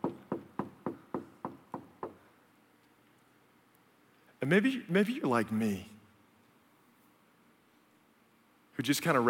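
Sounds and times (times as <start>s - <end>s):
knocking on a wooden door: 0.0s - 2.2s
speech: 4.5s - 5.9s, 8.8s - 9.2s.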